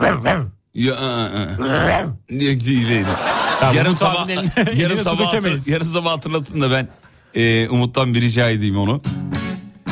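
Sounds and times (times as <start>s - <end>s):
person imitating a dog barking and growling whine with their voice: 0.0s - 0.6s, 1.4s - 2.2s
speech: 0.1s - 9.4s
laughter: 2.8s - 5.6s.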